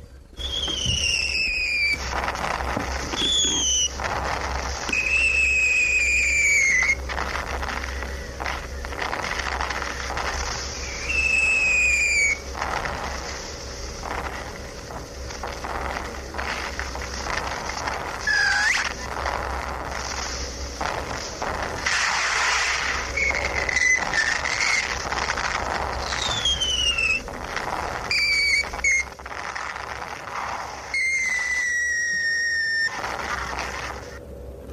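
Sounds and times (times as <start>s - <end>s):
steady rumbling background: 0.0s - 34.7s
light shrapnel shells whistling and bursting: 0.3s - 34.3s.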